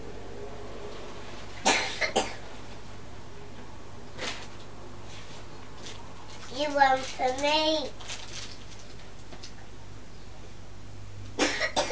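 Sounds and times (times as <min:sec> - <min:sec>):
harsh coughs: 0:01.6 - 0:02.4, 0:11.4 - 0:11.8
speech: 0:06.6 - 0:08.2.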